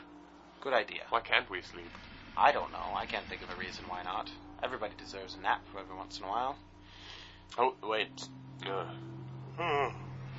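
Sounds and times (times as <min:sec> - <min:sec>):
steady low electrical hum: 0:00.0 - 0:10.3
speech: 0:00.6 - 0:06.7, 0:07.5 - 0:10.0
breathy vocal yawns: 0:08.7 - 0:10.2.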